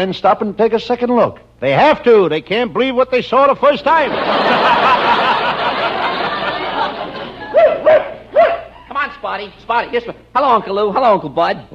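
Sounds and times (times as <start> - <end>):
speech: 0.0 - 5.2, 9.3 - 11.7
people laughing: 3.9 - 8.9
busy crowd noise: 4.1 - 8.8
dog barking: 7.5 - 8.8.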